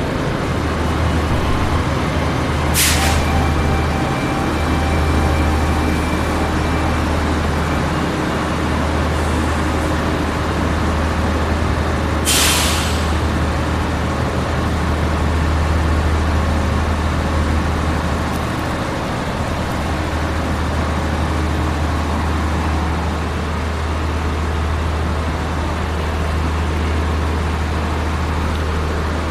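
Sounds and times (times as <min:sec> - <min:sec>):
passenger train arriving at station platform in Adelaide: 0:00.0 - 0:29.2
short sharp hisses of air brakes or doors: 0:02.8 - 0:03.2, 0:12.3 - 0:13.2.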